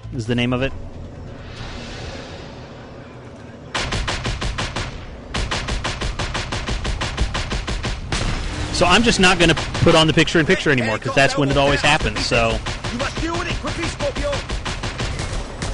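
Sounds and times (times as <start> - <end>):
speech: 0.1 - 0.9, 8.8 - 14.0
rapid shotgun fire in a combat video game: 3.8 - 15.7.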